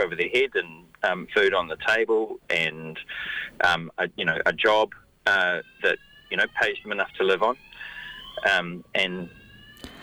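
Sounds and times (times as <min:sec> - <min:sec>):
speech: 0:00.0 - 0:07.7, 0:08.4 - 0:09.4
fire alarm going off with a high electronic tone: 0:05.5 - 0:10.0.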